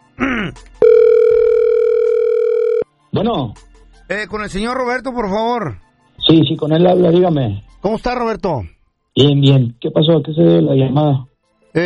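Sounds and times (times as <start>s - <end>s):
steady telephone dial tone while placing a call: 0.8s - 2.8s
speech: 3.1s - 11.8s.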